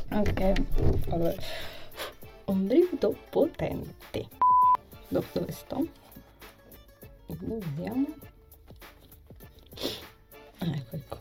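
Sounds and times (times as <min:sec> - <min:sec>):
speech: 0:00.2 - 0:04.4, 0:05.1 - 0:06.0, 0:07.3 - 0:08.9, 0:10.6 - 0:11.1
person chewing food: 0:08.6 - 0:10.0.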